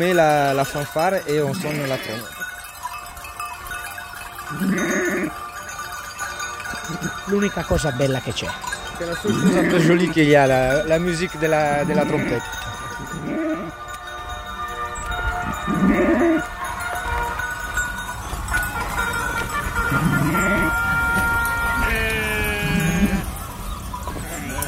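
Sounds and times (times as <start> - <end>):
speech: 0.0 - 2.4, 4.5 - 5.0, 7.3 - 13.4
busy outdoor noise: 0.0 - 24.6
steady jangle of bells: 0.0 - 24.6
flock of sheep bleating as they return: 1.4 - 2.4, 4.5 - 5.4, 6.8 - 7.2, 9.0 - 10.9, 11.6 - 13.8, 15.3 - 16.5, 19.8 - 23.3, 24.2 - 24.6.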